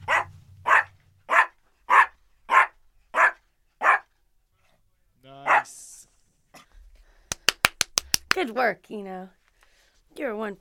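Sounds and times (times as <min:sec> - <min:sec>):
low rumble: 0:00.0 - 0:02.4
puppy barking: 0:00.0 - 0:04.1, 0:05.4 - 0:05.7
speech: 0:08.4 - 0:09.4, 0:10.2 - 0:10.5.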